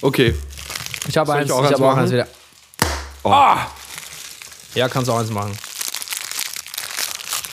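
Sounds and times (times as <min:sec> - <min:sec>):
speech: 0:00.0 - 0:02.4, 0:03.2 - 0:03.8, 0:04.7 - 0:05.6
plastic wrapper of a fortune cookie crinkling: 0:00.4 - 0:01.5, 0:02.1 - 0:02.8, 0:03.7 - 0:07.5.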